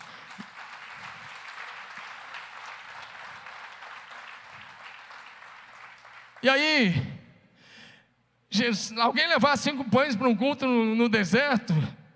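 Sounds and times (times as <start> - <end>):
audience applauding at a church service: 0.0 - 6.5
speech: 6.4 - 7.1, 8.5 - 12.0.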